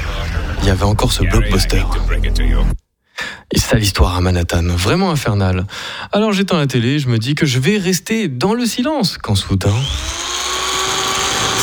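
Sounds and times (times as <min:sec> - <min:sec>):
speech: 0:00.7 - 0:02.8, 0:03.5 - 0:10.3
neighbours' power drill running with high-pitched mechanical whine: 0:09.6 - 0:11.6.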